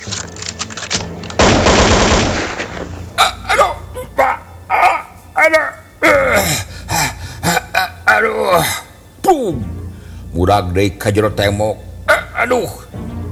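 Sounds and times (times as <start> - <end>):
rapid gunfire during a prison escape over a wall: 1.4 - 3.1
agitated voices: 3.1 - 13.3
speech: 10.5 - 13.1.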